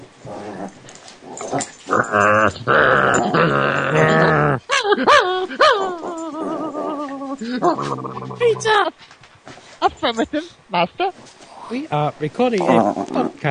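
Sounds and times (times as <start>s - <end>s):
female dog growling, grumbling and yelping: 0.2s - 8.9s, 12.6s - 13.4s
speech: 10.1s - 11.1s, 11.9s - 13.4s.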